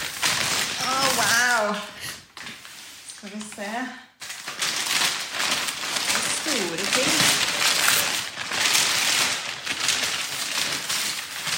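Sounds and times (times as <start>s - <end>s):
paper rustling and crinkling as a wrapped package is opened: 0.0s - 11.5s
speech: 1.6s - 2.0s, 3.2s - 4.1s.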